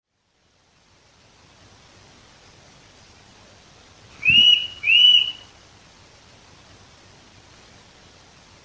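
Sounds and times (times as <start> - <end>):
Eurasian nuthatch Sitta europaea whistling: 4.2 - 5.5.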